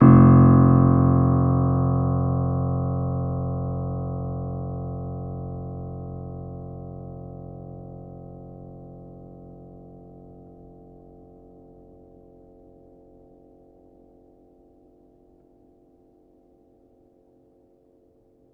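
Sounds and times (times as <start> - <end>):
upright player piano: 0.0 - 5.6.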